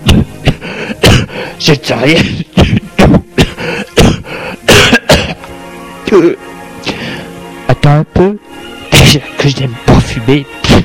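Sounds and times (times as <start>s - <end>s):
throat clearing: 0.0s - 1.3s, 2.2s - 5.4s
person coughing lightly: 0.0s - 1.4s, 2.1s - 5.4s
speech: 1.6s - 2.4s, 6.1s - 6.5s, 7.9s - 8.5s, 9.1s - 10.8s.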